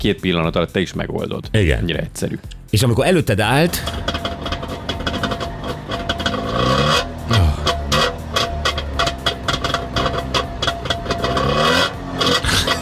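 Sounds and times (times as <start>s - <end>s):
speech: 0.0s - 4.2s
small two-stroke Trabant car engine starting and revving: 3.7s - 12.8s.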